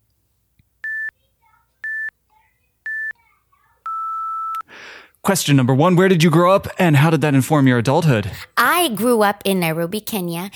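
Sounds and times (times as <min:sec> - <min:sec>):
short electronic beeps: 0:00.8 - 0:01.1, 0:01.8 - 0:02.1, 0:02.9 - 0:03.1, 0:03.9 - 0:04.6
faint chatter: 0:01.0 - 0:04.0
speech: 0:05.2 - 0:10.5.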